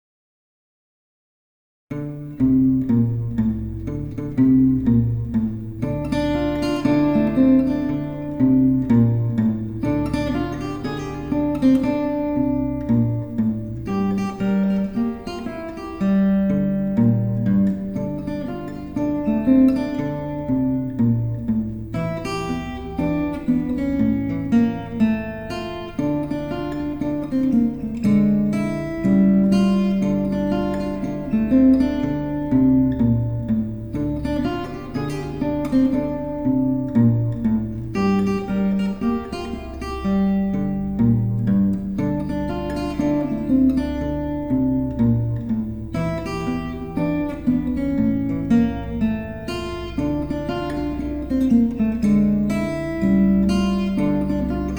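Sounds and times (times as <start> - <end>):
acoustic blues guitar in D minor: 1.9 - 54.7.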